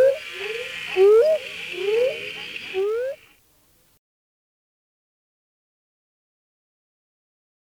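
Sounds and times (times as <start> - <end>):
Notaden melanoscaphus northern spadefoot toad giving rising whoop-like notes: 0.0 - 3.4
background hiss: 0.0 - 4.0.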